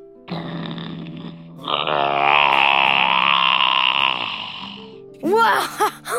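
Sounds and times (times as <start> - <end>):
deep raspy snoring of a sleeping dinosaur: 0.3 - 5.1.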